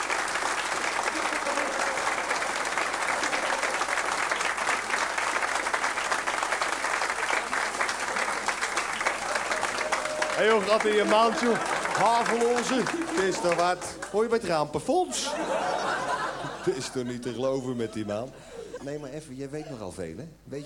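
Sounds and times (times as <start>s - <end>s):
audience applause: 0.0s - 14.7s
laughter: 0.8s - 5.0s, 7.3s - 19.1s
speech: 10.4s - 15.7s, 16.6s - 20.6s.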